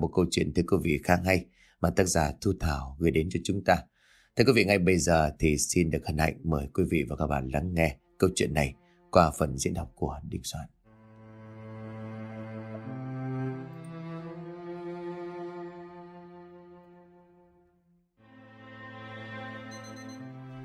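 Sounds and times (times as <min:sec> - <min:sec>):
speech: 0:00.0 - 0:10.8
small alarm clock on a table ringing with a buzzing electronic tone: 0:19.7 - 0:20.2.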